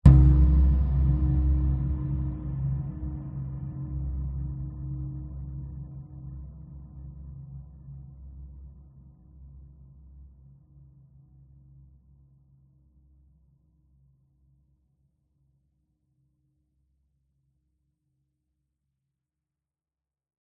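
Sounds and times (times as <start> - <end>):
dark reverberant cinematic hit: 0.1 - 5.8.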